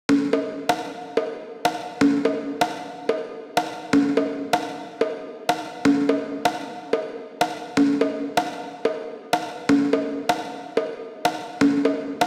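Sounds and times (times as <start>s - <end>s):
conga drums in a chamber: 0.1s - 12.2s.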